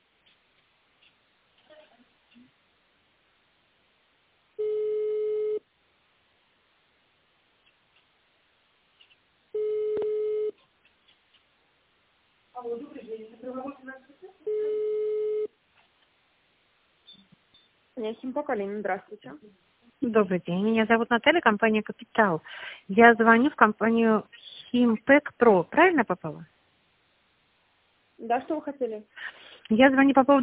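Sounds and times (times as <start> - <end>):
ringback tone on a telephone line: 4.6 - 5.6, 9.6 - 10.6, 14.5 - 15.5
speech: 12.6 - 14.7, 18.0 - 26.5, 28.2 - 30.4.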